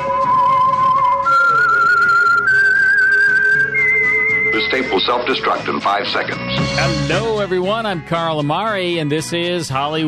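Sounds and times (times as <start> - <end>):
loud whistled melody of long sustained notes: 0.0 - 5.7
soft low musical backing: 0.0 - 10.0
speech: 5.0 - 10.0.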